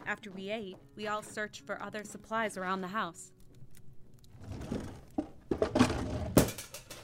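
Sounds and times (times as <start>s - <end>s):
speech: 0.1s - 3.4s
cooking pot for beef stew slipping and clattering: 4.5s - 7.0s.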